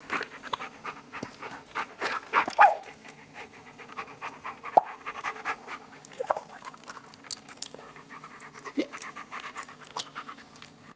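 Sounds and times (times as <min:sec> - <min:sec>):
dog panting heavily: 0:00.0 - 0:06.1, 0:07.8 - 0:10.9.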